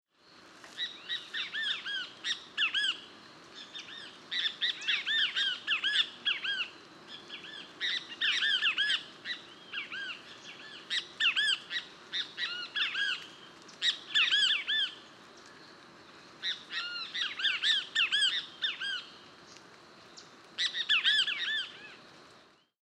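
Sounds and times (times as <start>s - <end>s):
Pitangus sulphuratus calling: 0.3s - 22.7s.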